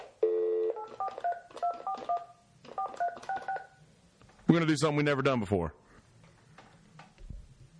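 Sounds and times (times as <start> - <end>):
electronic phone keypad tones as a call is placed: 0.2 - 3.8
speech: 4.5 - 5.8.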